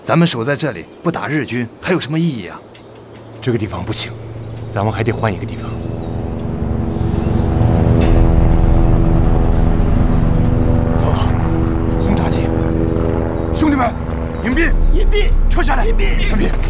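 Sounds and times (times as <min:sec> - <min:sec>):
speech: 0:00.0 - 0:02.8, 0:03.4 - 0:06.0
low-flying Japanese propeller warplanes passing overhead: 0:02.3 - 0:16.6
brief indistinct voices: 0:03.4 - 0:16.6.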